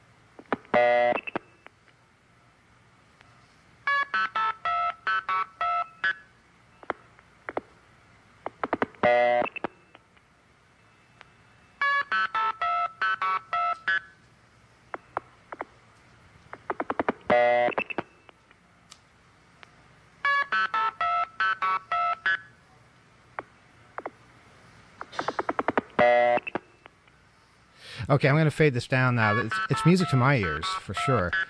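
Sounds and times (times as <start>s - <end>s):
telephone multi-frequency signaling tones with key pulse and start tone: 0.7s - 1.7s, 3.9s - 7.0s, 8.6s - 10.0s, 10.8s - 14.2s, 16.6s - 18.4s, 20.2s - 22.6s, 25.0s - 26.9s, 29.2s - 31.4s
speech: 28.1s - 31.4s.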